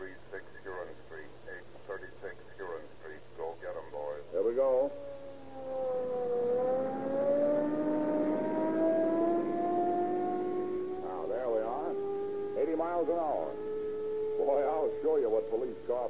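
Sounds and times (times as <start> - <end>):
voices: 0.0 - 7.3, 10.3 - 16.0
police car engine running on cracked gasoline revving up: 5.0 - 15.9.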